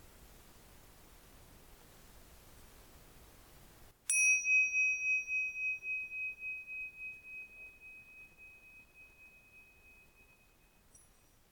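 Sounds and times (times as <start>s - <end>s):
meditation bell ringing: 4.1s - 11.4s.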